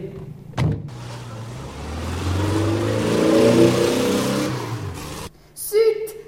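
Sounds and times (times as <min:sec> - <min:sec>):
police car engine revving and driving away: 0:00.9 - 0:05.3.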